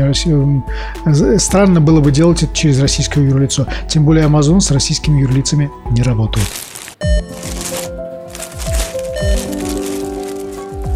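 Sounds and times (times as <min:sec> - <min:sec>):
speech: 0:00.0 - 0:07.2
plastic bag rustling and crinkling: 0:05.9 - 0:10.9.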